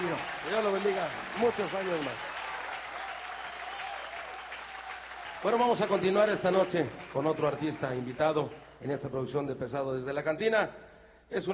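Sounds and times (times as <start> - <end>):
audience applauding a performer: 0.0 - 8.9
speech: 0.5 - 2.3, 5.4 - 11.5.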